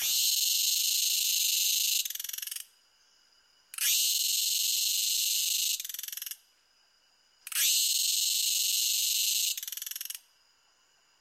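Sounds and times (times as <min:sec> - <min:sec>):
cicada song from abdominal tymbals: 0:00.0 - 0:02.7, 0:03.7 - 0:06.4, 0:07.4 - 0:10.3.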